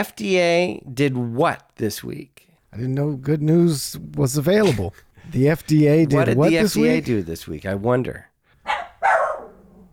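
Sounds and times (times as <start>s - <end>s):
speech: 0.0s - 8.3s
dog barking: 8.6s - 9.9s.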